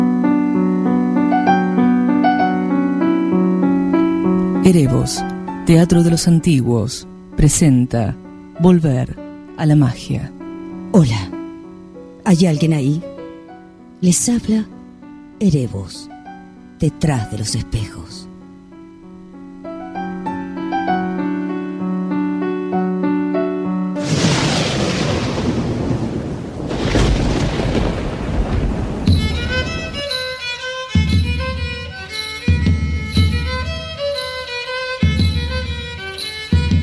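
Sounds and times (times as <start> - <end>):
music: 0.0 - 24.4, 28.9 - 36.8
speech: 4.7 - 11.3, 12.2 - 13.1, 14.0 - 14.8, 15.4 - 16.1, 16.8 - 18.2
rumbling thunder: 24.0 - 30.1
heavy rain: 24.0 - 30.2
music with a steady pulsing beat: 30.9 - 34.2.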